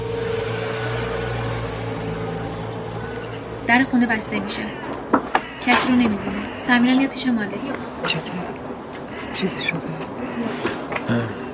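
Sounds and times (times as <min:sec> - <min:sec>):
car engine humming while driving into a house courtyard: 0:00.0 - 0:06.8
speech: 0:03.7 - 0:04.9, 0:05.6 - 0:08.6, 0:09.4 - 0:11.2.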